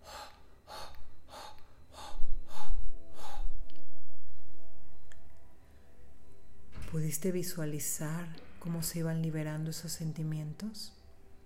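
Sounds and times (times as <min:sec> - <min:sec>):
airy breaths in a guided relaxation exercise: 0:00.0 - 0:03.7
steady low tone: 0:00.0 - 0:11.4
speech: 0:07.0 - 0:11.0.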